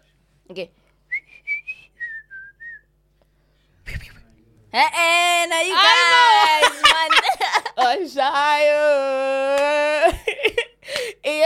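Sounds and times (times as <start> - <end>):
speech: 0.5 - 0.8, 4.7 - 7.1, 7.8 - 10.6
person whistling a short tune: 1.1 - 2.9
laughter: 5.8 - 7.8.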